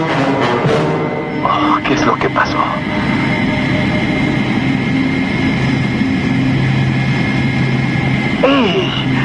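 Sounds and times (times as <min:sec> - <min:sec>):
spacecraft retro-rockets firing: 0:00.0 - 0:09.2
speech: 0:01.9 - 0:03.2.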